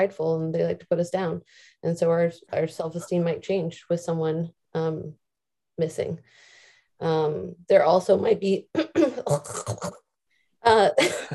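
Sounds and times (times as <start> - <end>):
speech: 0.0 - 5.2, 5.8 - 10.0, 10.6 - 11.3
harsh gravelly coughing: 8.8 - 10.0.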